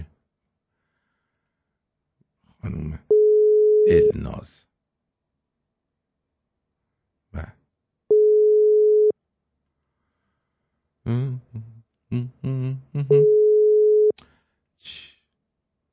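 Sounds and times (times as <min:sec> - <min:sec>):
telephone busy signal while a call is placed: 0:03.1 - 0:04.1, 0:08.1 - 0:09.1, 0:13.2 - 0:14.1
speech: 0:03.9 - 0:04.7.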